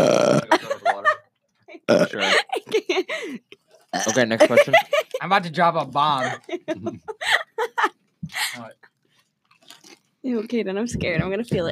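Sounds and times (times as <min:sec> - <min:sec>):
person burping: 0:00.0 - 0:00.7, 0:01.8 - 0:02.5, 0:03.9 - 0:04.5, 0:11.6 - 0:11.7
laughter: 0:00.4 - 0:01.2, 0:02.1 - 0:03.4, 0:04.2 - 0:05.2, 0:06.0 - 0:08.7, 0:11.2 - 0:11.7
speech: 0:04.1 - 0:06.5, 0:10.5 - 0:11.7.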